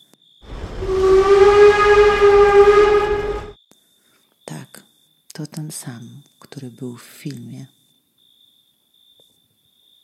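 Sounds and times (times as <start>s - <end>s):
black steel steam locomotive whistle: 0.5s - 3.5s
steam train rumbling chug: 0.5s - 3.5s
speech: 5.7s - 7.8s.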